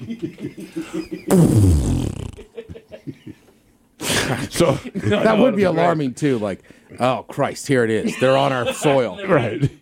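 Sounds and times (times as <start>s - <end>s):
speech: 0.1s - 2.2s, 4.5s - 9.8s
fart sound effect: 1.3s - 2.5s.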